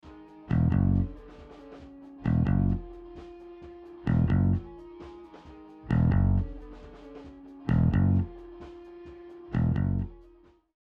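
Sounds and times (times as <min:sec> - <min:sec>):
solo bass: 0:00.5 - 0:01.1, 0:02.2 - 0:02.9, 0:04.1 - 0:04.7, 0:05.9 - 0:06.6, 0:07.7 - 0:08.4, 0:09.5 - 0:10.2.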